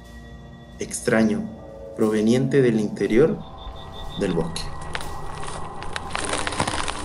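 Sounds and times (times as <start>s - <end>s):
speech: 0.8s - 3.5s, 4.2s - 4.8s
steady rumbling crunch: 3.5s - 7.0s
tree creaking, cracking and splintering in a forest: 4.8s - 7.0s.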